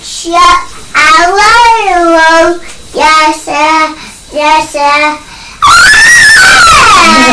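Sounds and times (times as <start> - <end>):
speech: 0.2 - 5.3, 7.0 - 7.3
young child wailing and screaming: 5.6 - 7.3.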